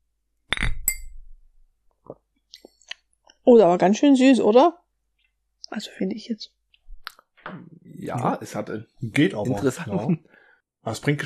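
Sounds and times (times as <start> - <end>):
glasses clinking in a toast: 0.5 - 1.2, 9.3 - 9.9
speech: 3.5 - 4.8, 5.7 - 6.6, 8.0 - 11.2.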